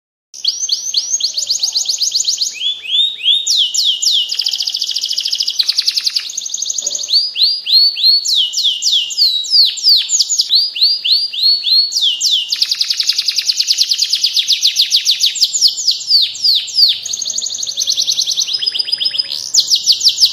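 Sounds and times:
standard canary singing: 0.4s - 20.3s.

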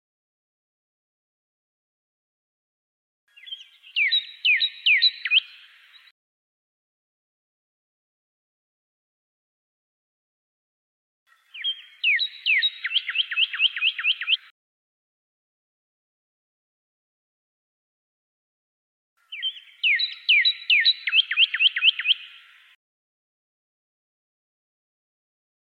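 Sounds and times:
pyrrhuloxia whistling down-slurred phrases: 3.4s - 5.6s, 11.6s - 14.5s, 19.3s - 22.4s.

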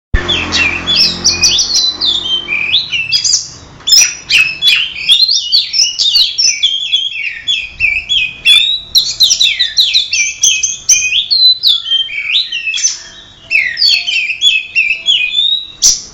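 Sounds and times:
oriental magpie-robin song in simulated songbird contest: 0.1s - 16.1s.

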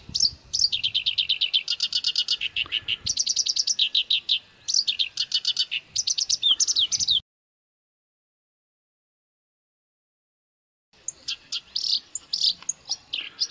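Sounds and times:
Black-browed reed warbler song: 0.0s - 7.2s, 11.0s - 13.4s.

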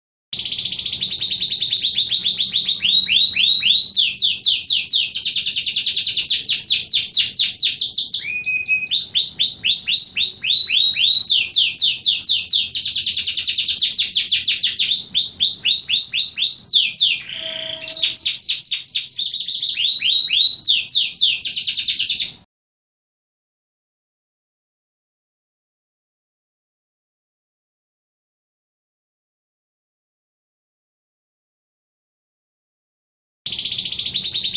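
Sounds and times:
canary singing: 0.4s - 22.4s, 33.5s - 34.5s.

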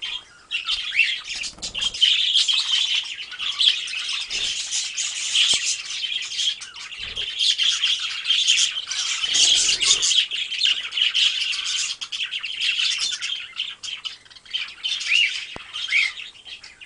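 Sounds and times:
budgerigar flock calling: 0.0s - 16.8s.

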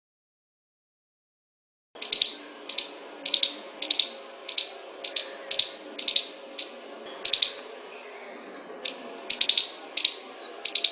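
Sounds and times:
squirrel giving a rattling chatter: 2.0s - 7.7s, 8.8s - 10.9s.

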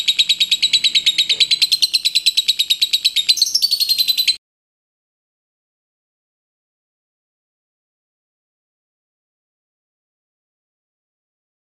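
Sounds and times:
liontin type lovebird song: 0.0s - 4.4s.

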